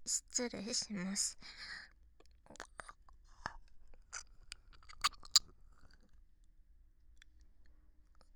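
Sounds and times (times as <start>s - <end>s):
speech: 0.1s - 1.8s
moist mouth smacks and small clicks: 4.7s - 5.5s
slurping: 4.8s - 5.5s
soft wet licking sounds: 4.9s - 5.4s.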